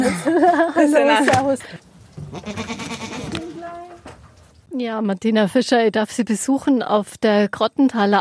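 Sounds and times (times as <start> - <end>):
laughter: 0.0 - 1.1
speech: 0.0 - 3.0, 4.7 - 8.2
large white goats bleating on an alpine pasture: 2.2 - 4.0.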